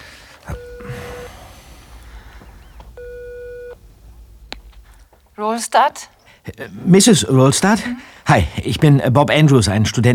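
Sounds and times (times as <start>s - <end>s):
mobile phone ringing tone over speakerphone: 0.5s - 3.8s
speech: 5.4s - 10.1s.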